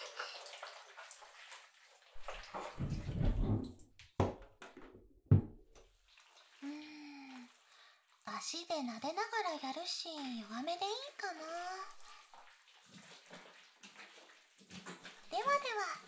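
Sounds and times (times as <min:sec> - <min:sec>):
shower water running as massage oil is rinsed off: 0:00.0 - 0:04.0, 0:05.4 - 0:16.0
knocks and thumps: 0:02.2 - 0:05.8
speech: 0:08.5 - 0:12.0.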